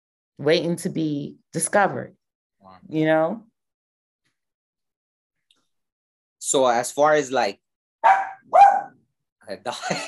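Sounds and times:
speech: 0.4 - 3.5, 6.5 - 8.7, 9.5 - 10.0
dog barking: 8.0 - 9.0
laughter: 9.7 - 10.0.

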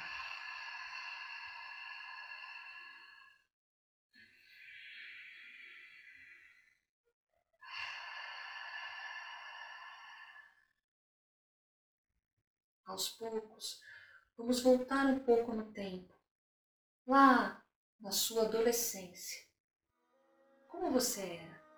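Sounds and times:
slow deep breathing in and out: 0.0 - 3.5, 4.2 - 6.8, 7.6 - 10.8
speech: 12.9 - 16.2, 17.1 - 19.4, 20.8 - 21.5.

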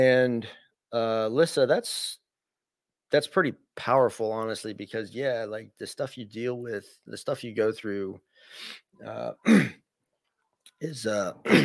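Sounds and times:
speech: 0.0 - 2.2, 3.1 - 9.8, 10.8 - 11.6
person clearing throat: 9.4 - 9.8, 11.4 - 11.6.

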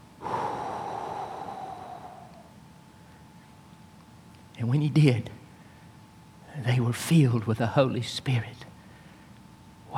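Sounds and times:
person blowing out air in a breathing demonstration: 0.2 - 2.5
speech: 4.6 - 5.4, 6.6 - 8.7.

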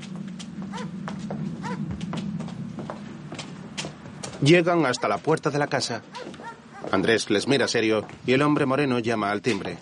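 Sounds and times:
several people's footsteps climbing a stone stairway surrounded by vegetation: 0.0 - 5.3, 6.1 - 8.5
steady low hum: 0.0 - 9.7
speech: 4.4 - 9.7.

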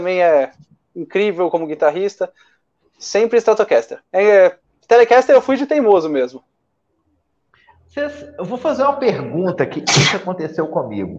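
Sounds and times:
speech: 0.0 - 6.5, 7.9 - 11.1
sneeze: 9.8 - 10.3.

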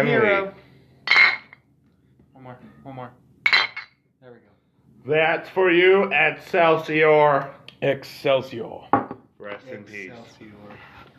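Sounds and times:
speech: 0.0 - 0.6, 2.4 - 3.2, 5.0 - 10.9
glasses clinking in a toast: 1.1 - 1.6, 3.5 - 4.0.

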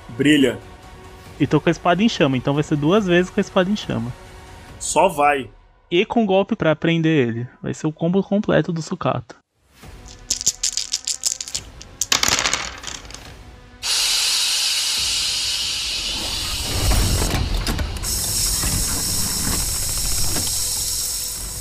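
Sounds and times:
speech: 0.2 - 0.7, 1.4 - 4.2, 4.8 - 9.4
steam venting from accelerating robot mechanism: 13.8 - 21.5
mechanical clicks and ratcheting rattle of a robot mechanism: 16.4 - 21.5.

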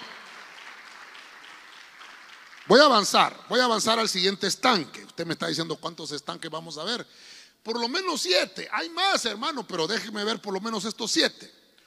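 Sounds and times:
audience clapping: 0.0 - 4.1
speech: 2.7 - 11.6.

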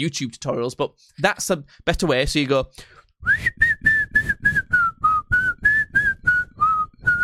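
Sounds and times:
speech: 0.0 - 3.7
person whistling with their mouth: 3.2 - 7.2.

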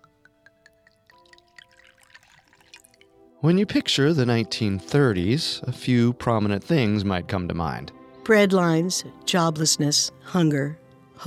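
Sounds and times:
drink pouring into a glass: 0.0 - 3.2
speech: 3.4 - 11.2.

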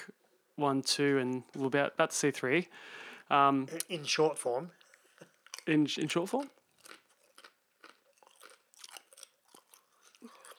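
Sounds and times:
speech: 0.6 - 4.8, 5.6 - 6.6
person chewing crunchy food: 4.8 - 5.7, 6.4 - 10.5.

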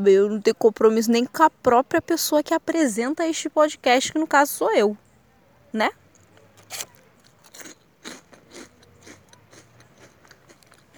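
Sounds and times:
speech: 0.0 - 5.0, 5.7 - 6.0, 6.7 - 6.9
biting and chewing a biscuit: 6.6 - 10.9.

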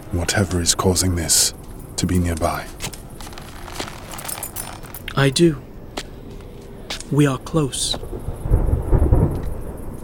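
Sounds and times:
faint hiss of rain: 0.0 - 10.0
speech: 0.1 - 3.0, 5.2 - 5.7, 7.1 - 8.4
thunder rumbling: 8.0 - 10.0.

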